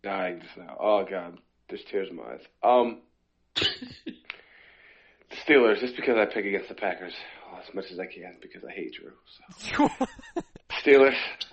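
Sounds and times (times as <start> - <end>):
speech: 0.0 - 4.3, 5.3 - 11.5
person coughing: 3.6 - 4.2
throat clearing: 3.6 - 4.2
laughter: 9.5 - 10.7.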